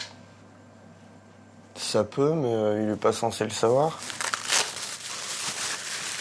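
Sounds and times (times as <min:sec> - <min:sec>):
speech: 0:01.9 - 0:04.2
pile of personal documents rustling and crinkling as they are handled and shuffled: 0:03.6 - 0:06.1.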